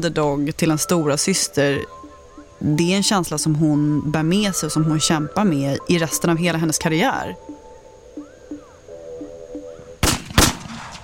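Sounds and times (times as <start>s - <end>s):
speech: 0.0s - 2.0s, 2.6s - 7.5s
faint tonal sound: 0.0s - 10.0s
gunshots in a Compton neighborhood: 10.0s - 11.0s.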